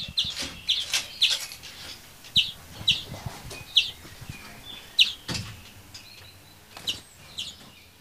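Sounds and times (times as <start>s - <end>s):
rustling: 0.0s - 5.5s
young greenfinch squeaking: 0.0s - 7.6s.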